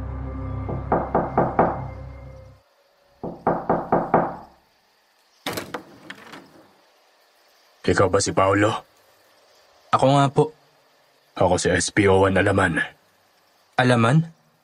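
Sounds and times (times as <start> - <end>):
police knocking on a house door: 0.7 - 2.0, 3.2 - 4.6
speech: 7.9 - 8.9, 9.9 - 10.6, 11.4 - 13.0, 13.8 - 14.4.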